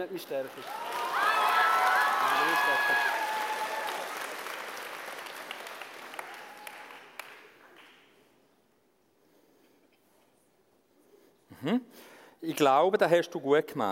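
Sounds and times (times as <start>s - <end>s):
speech: 0.0s - 1.3s, 2.3s - 3.4s, 11.6s - 13.8s
audience applause: 0.3s - 8.0s
cheering voices: 0.6s - 4.4s.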